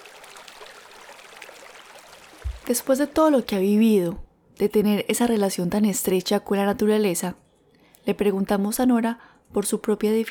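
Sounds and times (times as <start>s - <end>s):
running water babbling in a small stream: 0.0s - 3.8s
low thump: 2.4s - 2.7s
speech: 2.7s - 7.4s, 8.0s - 10.2s.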